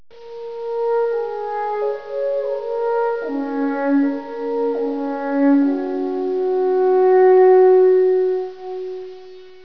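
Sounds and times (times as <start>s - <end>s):
alphorn playing Swiss music: 0.2s - 9.6s.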